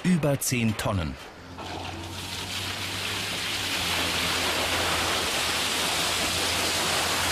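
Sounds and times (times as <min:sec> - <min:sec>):
speech: 0:00.2 - 0:01.3
low engine hum: 0:01.3 - 0:07.3
water pouring into a large metal excavator bucket: 0:01.6 - 0:07.3.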